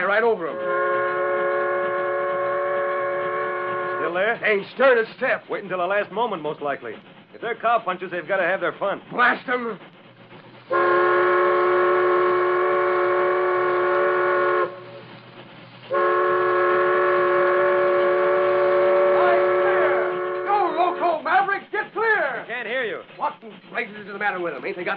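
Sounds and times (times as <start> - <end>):
low rumble of the moving steam train: 0.0 - 24.9
speech: 0.1 - 0.8, 4.1 - 9.9, 10.7 - 10.9, 23.4 - 24.9
steam train whistle: 0.4 - 4.3, 10.7 - 15.0, 15.9 - 21.2.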